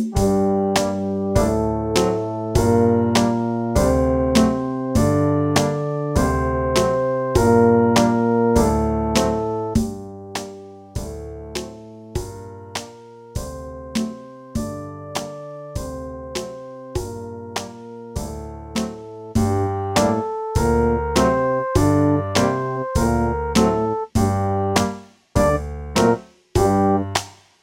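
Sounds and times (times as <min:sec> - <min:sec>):
brass instrument playing scales in B flat for practice: 0:00.2 - 0:10.4, 0:18.1 - 0:27.2.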